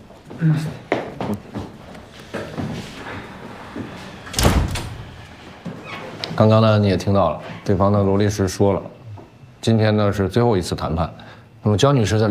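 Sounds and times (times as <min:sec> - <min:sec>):
speech: 0:00.4 - 0:01.5, 0:06.4 - 0:09.0, 0:09.6 - 0:12.2
door shutting with a thud during a legal negotiation meeting: 0:04.3 - 0:05.2.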